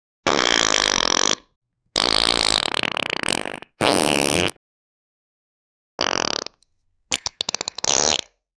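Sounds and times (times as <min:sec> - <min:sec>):
funny diarrhea fart: 0:00.2 - 0:04.6, 0:06.0 - 0:08.4.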